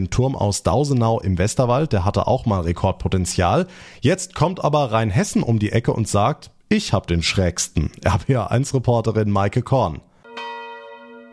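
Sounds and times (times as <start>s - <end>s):
speech: 0.0s - 10.6s
church bell ringing: 10.2s - 11.3s.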